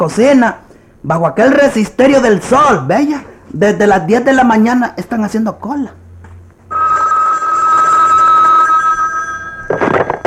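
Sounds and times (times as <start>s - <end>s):
speech: 0.0s - 6.0s
telephone bell ringing with a steady metallic trill: 6.7s - 10.2s.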